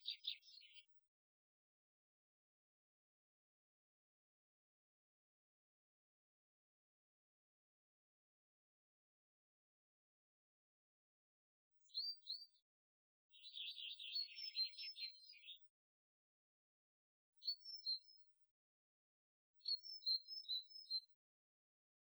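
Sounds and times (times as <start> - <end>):
bird song in short high chirping and warbling phrases: 0.0 - 0.9, 11.8 - 12.6, 13.3 - 15.7, 17.4 - 18.4, 19.6 - 21.2.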